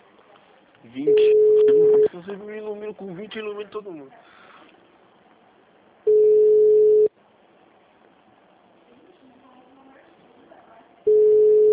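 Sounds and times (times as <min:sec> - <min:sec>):
speech: 0:00.8 - 0:01.3, 0:02.2 - 0:04.4
ringing tone of an outgoing phone call: 0:01.1 - 0:02.1, 0:06.1 - 0:07.1, 0:11.1 - 0:11.7.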